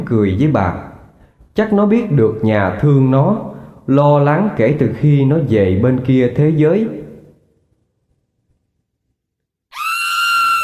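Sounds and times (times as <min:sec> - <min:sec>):
speech: 0:00.1 - 0:00.9, 0:01.6 - 0:07.0
person screaming outside behind a house: 0:09.7 - 0:10.6.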